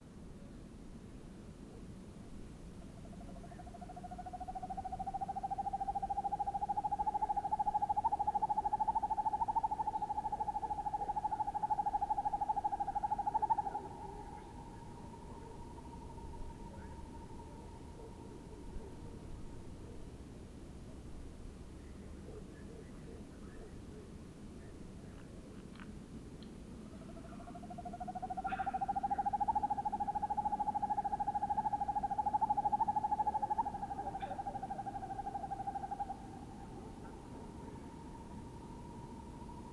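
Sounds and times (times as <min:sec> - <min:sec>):
two male Northern Hawk Owls hooting: 0:04.5 - 0:19.1, 0:27.0 - 0:39.7.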